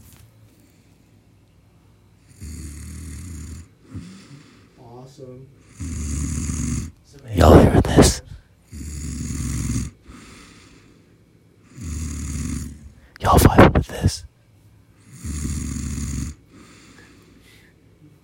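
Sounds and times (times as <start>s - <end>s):
person snoring while asleep on the floor: 2.3s - 4.7s, 5.6s - 11.0s, 11.6s - 14.2s, 15.0s - 17.3s
harsh snorting breaths: 2.3s - 5.0s, 5.6s - 14.3s, 15.0s - 17.9s
speech: 5.1s - 6.2s.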